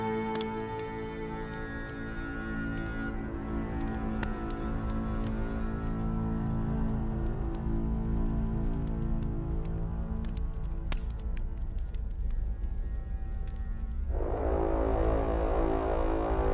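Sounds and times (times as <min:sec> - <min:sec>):
steady rain: 0:00.0 - 0:16.5.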